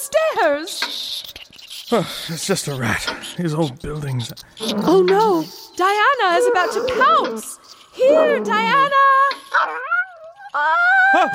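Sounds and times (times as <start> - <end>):
speech: 0.0 - 1.2, 1.9 - 9.8, 10.5 - 11.3
dog yelping: 4.6 - 11.3.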